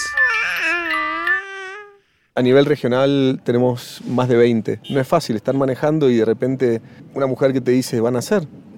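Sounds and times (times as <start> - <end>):
newborn baby crying: 0.0 - 2.2
speech: 2.4 - 8.7.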